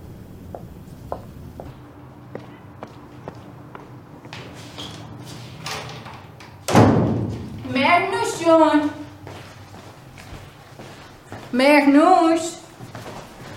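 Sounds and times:
door shut with a heavy thud: 5.6 - 7.7
speech: 8.5 - 9.0, 11.6 - 12.6.

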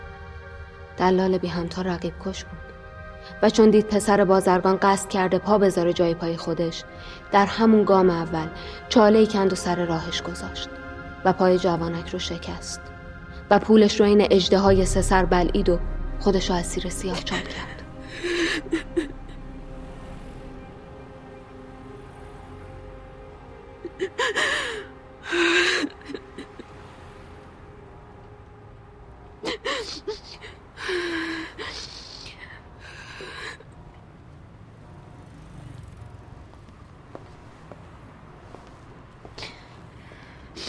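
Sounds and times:
speech: 1.0 - 12.9, 13.5 - 19.1
person sobbing and gasping: 17.1 - 19.4, 23.8 - 26.7, 29.4 - 32.3.

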